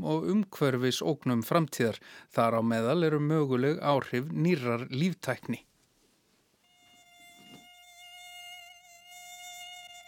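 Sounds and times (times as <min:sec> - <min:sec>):
speech: 0:00.0 - 0:05.7
mosquitoes buzzing: 0:06.6 - 0:10.0.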